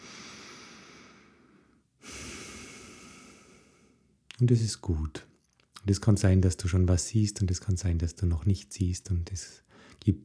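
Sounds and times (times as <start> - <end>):
deep breath: 0.0 - 4.1, 9.7 - 10.0
steady soft hiss: 0.0 - 10.2
speech: 4.4 - 10.2.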